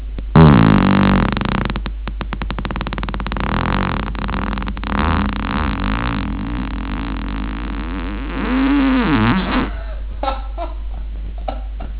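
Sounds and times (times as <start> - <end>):
fart: 0.3 - 9.8.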